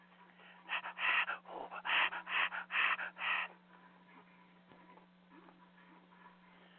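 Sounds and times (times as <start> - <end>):
heavy panting breaths from a strangling scene in a film: 0.0 - 3.7
faint steady hum: 0.0 - 6.7.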